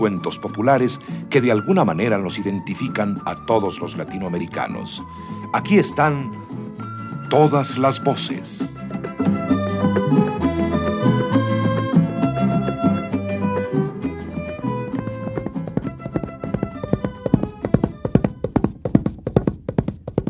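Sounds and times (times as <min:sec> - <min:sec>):
speech: 0:00.0 - 0:06.6, 0:07.3 - 0:09.0
tuneful music: 0:00.0 - 0:18.4
horse hooves trotting: 0:06.4 - 0:20.2.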